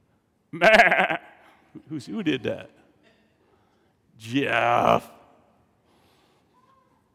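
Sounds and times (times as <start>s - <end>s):
speech: 0.5s - 1.2s, 1.9s - 2.8s, 4.2s - 5.2s
person imitating a sheep bleating: 0.6s - 1.4s, 4.2s - 5.2s.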